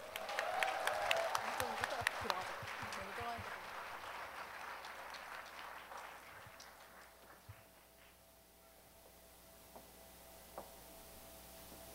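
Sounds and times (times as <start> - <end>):
audience clapping at a performance: 0.0 - 8.2.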